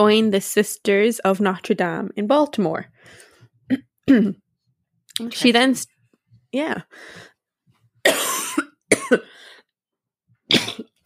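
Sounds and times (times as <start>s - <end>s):
speech: 0.0s - 4.4s, 5.2s - 5.9s, 6.5s - 7.3s, 9.1s - 9.3s
person burping: 3.7s - 4.4s, 8.1s - 9.3s, 10.5s - 11.0s
person coughing: 3.7s - 4.4s, 8.0s - 9.4s, 10.5s - 11.0s.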